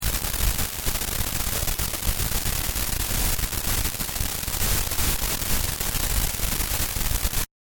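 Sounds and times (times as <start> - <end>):
noise hiss recorded with Rode NT5: 0.0 - 7.5.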